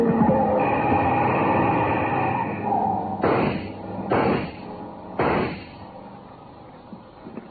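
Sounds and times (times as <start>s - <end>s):
loud noisy car engine bursts: 0.1s - 6.8s.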